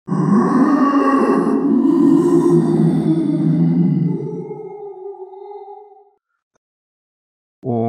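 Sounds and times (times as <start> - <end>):
roar of a large dinosaur: 0.0 - 5.9.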